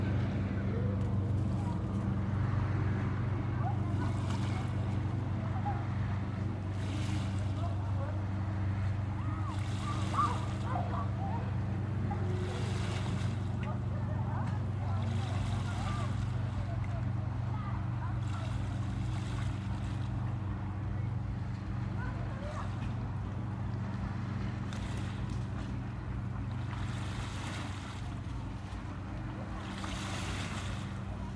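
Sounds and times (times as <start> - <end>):
low rumble of wind and open water: 0.0 - 31.3
lake waves slapping against the shore on a warm summer day: 3.6 - 20.3, 23.9 - 31.3.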